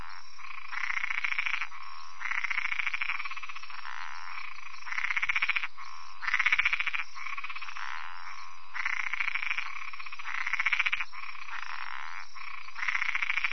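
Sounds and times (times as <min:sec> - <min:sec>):
Spot-legged treefrog Boana albopunctata calling in rapid pulsed bursts: 0:00.0 - 0:13.5.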